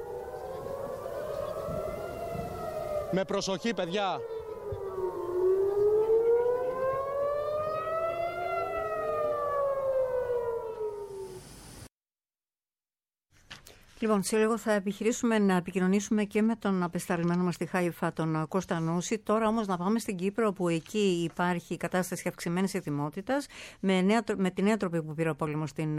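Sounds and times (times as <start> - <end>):
air raid sirens warning of an attack: 0.0 - 11.8
speech: 3.1 - 4.3, 14.0 - 25.9.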